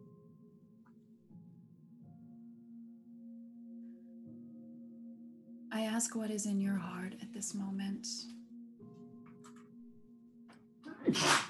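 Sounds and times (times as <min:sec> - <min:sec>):
speech: 0:05.7 - 0:08.4
person sneezing: 0:10.9 - 0:11.4.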